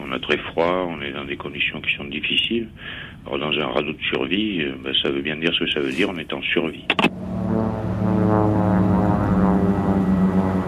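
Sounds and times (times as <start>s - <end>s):
speech: 0.1s - 7.3s
propeller airplane droning overhead: 6.8s - 10.6s.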